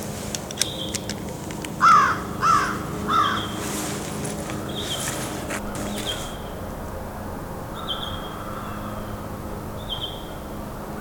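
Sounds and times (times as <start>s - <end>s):
immature male Pine Grosbeak singing vireo-like song in southern Ontario: 0.0s - 6.7s, 7.7s - 10.9s.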